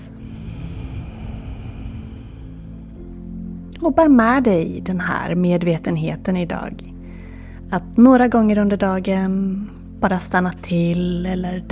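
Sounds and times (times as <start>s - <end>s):
slow deep exhale during a guided breathing exercise: 0.0s - 3.1s
speech: 3.8s - 6.9s, 7.7s - 11.7s.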